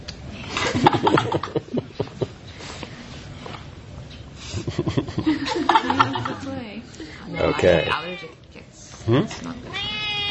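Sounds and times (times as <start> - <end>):
laughter: 0.6 - 2.4, 4.5 - 6.7
speech: 6.4 - 8.4, 9.1 - 9.7
cat meowing: 9.7 - 10.2.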